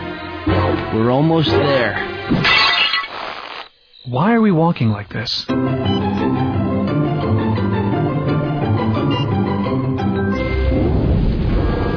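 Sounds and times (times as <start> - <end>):
musical passage: 0.0 - 2.4, 5.5 - 11.9
speech: 0.9 - 2.6, 4.0 - 6.0
low rumble of thunder: 10.7 - 11.9.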